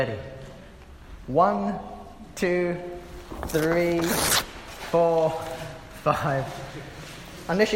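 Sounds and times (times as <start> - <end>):
speech: 0.0 - 0.4, 1.3 - 7.7
audience tearing perforated paper in unison: 3.4 - 4.7.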